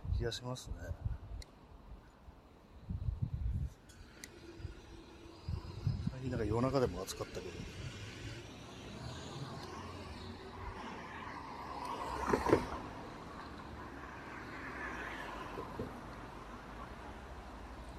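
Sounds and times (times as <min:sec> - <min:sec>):
speech: 0:00.2 - 0:01.1, 0:06.2 - 0:07.8
outdoor traffic rumble from passing cars: 0:00.8 - 0:17.9.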